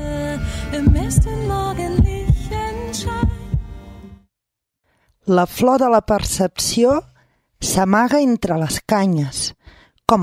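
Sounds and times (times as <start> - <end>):
speech: 0.7 - 2.2, 5.3 - 10.2
deep loud heartbeat thumping in lub-dub pairs: 0.9 - 1.4, 2.0 - 2.5, 3.2 - 3.8.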